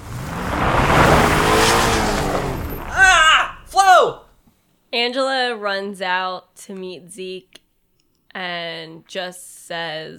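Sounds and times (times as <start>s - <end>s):
car engine roaring while accelerating hard: 0.0s - 3.8s
car tires squealing while peeling away: 0.0s - 3.8s
speech: 4.9s - 7.6s, 8.4s - 10.1s.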